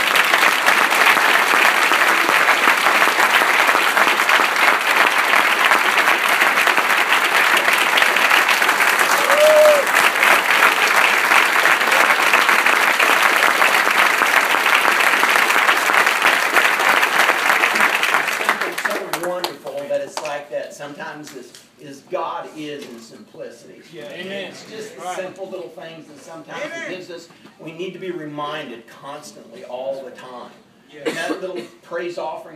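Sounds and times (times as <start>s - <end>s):
large audience clapping: 0.0s - 20.4s
speech: 23.3s - 32.5s.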